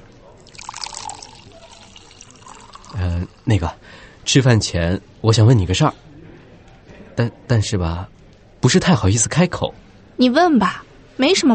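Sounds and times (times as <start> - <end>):
red wine poured into a stemmed wine glass: 0.4 - 4.0
speech: 3.2 - 6.1, 7.2 - 11.5.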